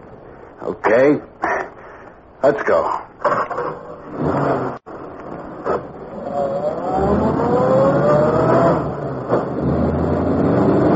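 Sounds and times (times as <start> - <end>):
speech: 0.6 - 1.6, 2.4 - 4.8
car engine starting and revving: 4.0 - 10.9.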